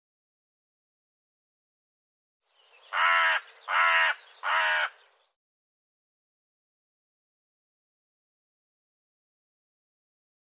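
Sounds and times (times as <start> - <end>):
bird giving harsh rasping caws: 2.8 - 5.1.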